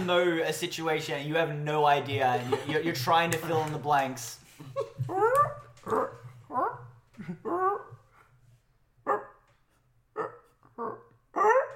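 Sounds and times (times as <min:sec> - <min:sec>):
speech: 0:00.0 - 0:07.9
laughter: 0:02.2 - 0:05.2
person imitating a dog with yips, whines and short barks: 0:05.1 - 0:08.1, 0:10.2 - 0:11.7.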